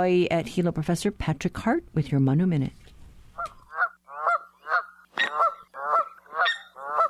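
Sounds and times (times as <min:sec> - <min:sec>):
speech: 0:00.0 - 0:03.6
Canada goose honking: 0:03.4 - 0:07.0.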